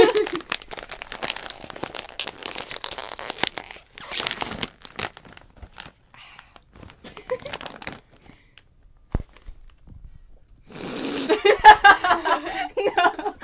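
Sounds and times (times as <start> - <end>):
laughter: 0.0 - 0.5, 11.3 - 13.4
popcorn bag being opened, plastic crinkling: 0.0 - 8.6.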